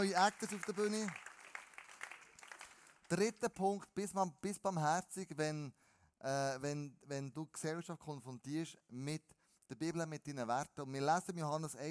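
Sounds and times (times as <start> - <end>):
speech: 0.0 - 1.2, 3.1 - 11.9
audience applause: 0.0 - 3.1.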